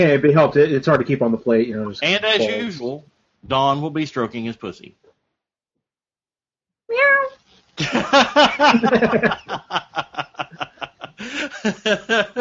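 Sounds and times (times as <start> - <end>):
speech: 0.0 - 5.0, 7.0 - 10.6, 11.2 - 12.3
cat meowing: 6.9 - 7.4
rhythmic snickering and chuckling laughter: 7.8 - 12.3.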